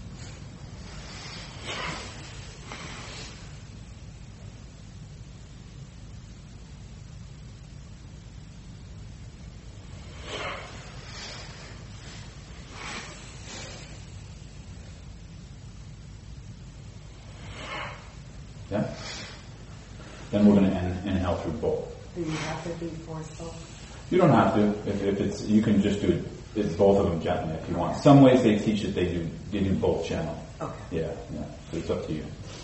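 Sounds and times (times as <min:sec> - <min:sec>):
alternate nostril breathing, inhaling and exhaling: 0:00.2 - 0:03.7, 0:09.7 - 0:14.8, 0:17.0 - 0:20.4
speech: 0:18.8 - 0:19.1, 0:20.3 - 0:32.6.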